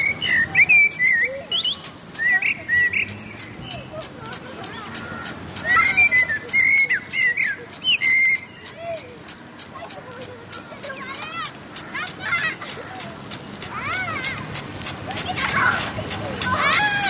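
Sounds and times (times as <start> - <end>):
common blackbird singing in a park: 0.0 - 3.9, 5.8 - 8.8
faint activity: 0.0 - 17.0.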